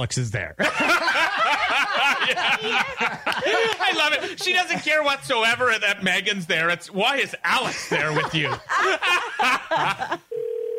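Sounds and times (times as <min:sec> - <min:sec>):
speech: 0:00.0 - 0:01.1, 0:02.3 - 0:10.2
people laughing: 0:00.6 - 0:05.8, 0:07.5 - 0:10.3
telephone dial tone: 0:10.3 - 0:10.7.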